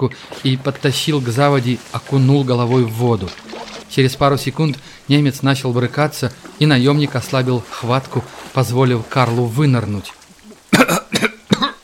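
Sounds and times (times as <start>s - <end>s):
speech: 0.0s - 11.3s
man coughing after having his head dunked in water: 10.7s - 11.8s.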